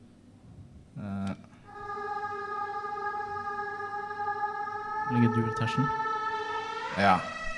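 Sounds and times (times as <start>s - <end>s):
choir layer holding a steady chord in a music mix: 1.7s - 7.5s
speech: 5.1s - 6.1s, 7.0s - 7.4s.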